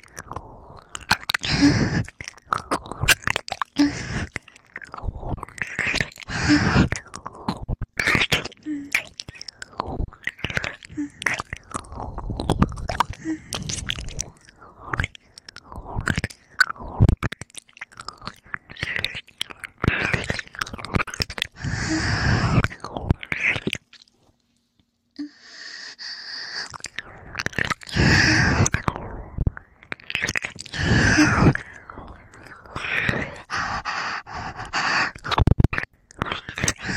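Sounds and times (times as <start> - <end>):
chewing food: 0.0 - 25.0, 26.4 - 36.9
breathing: 0.2 - 2.1, 3.8 - 4.4, 5.7 - 7.1, 13.0 - 16.1, 21.5 - 23.0, 25.2 - 29.7, 30.6 - 35.6, 36.2 - 36.9.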